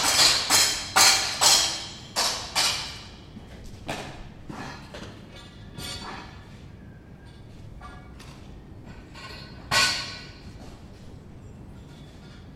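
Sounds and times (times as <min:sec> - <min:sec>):
sharp metal clanks of scaffold building around a church: 0:00.0 - 0:03.2, 0:04.0 - 0:06.6, 0:07.3 - 0:10.7.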